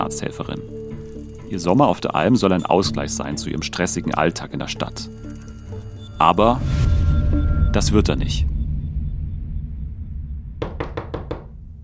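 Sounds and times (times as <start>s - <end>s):
speech: 0.0s - 0.9s, 1.5s - 5.4s, 6.2s - 6.9s, 7.7s - 8.5s
low steady rumble: 6.5s - 11.8s
knocking on the wooden door of an alpine mountain hut at night: 10.6s - 11.5s.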